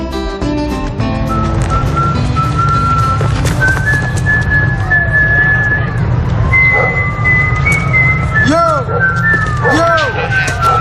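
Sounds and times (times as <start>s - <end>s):
steady low rumbling backdrop: 0.6s - 10.7s
person whistling a tune: 1.3s - 9.8s.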